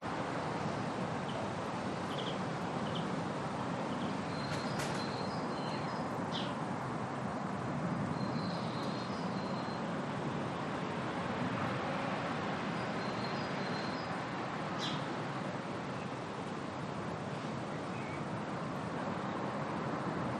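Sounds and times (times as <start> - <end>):
distant traffic: 0.0 - 20.3
afternoon birds in a residential area: 0.6 - 6.7, 8.0 - 10.8, 12.7 - 15.2, 16.8 - 18.4.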